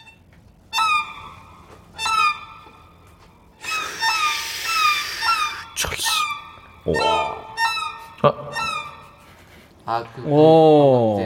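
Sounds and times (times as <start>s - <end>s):
violin imitating seagull cries: 3.6s - 8.8s
speech: 6.8s - 7.4s, 8.2s - 8.5s, 9.9s - 11.2s.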